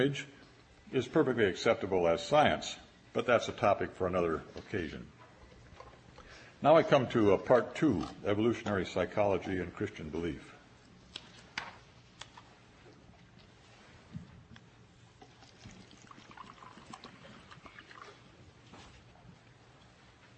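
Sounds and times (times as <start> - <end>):
speech: 0.0 - 5.2, 6.6 - 10.5
water pouring into a glass: 15.3 - 18.2.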